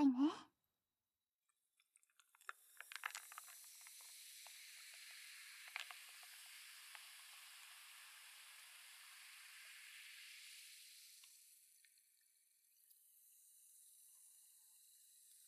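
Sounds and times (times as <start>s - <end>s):
carbonated liquid fizzing: 2.1s - 12.6s.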